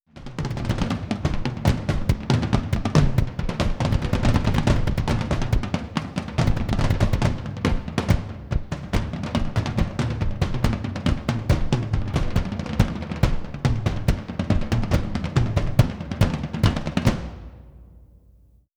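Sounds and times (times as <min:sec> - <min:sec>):
drums and percussion: 0:00.1 - 0:18.4.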